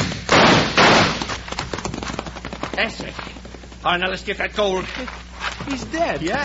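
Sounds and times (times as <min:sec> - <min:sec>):
gunshots in a Western-style radio drama: 0:00.0 - 0:01.4
noisy background: 0:00.0 - 0:06.4
speech: 0:02.8 - 0:06.4.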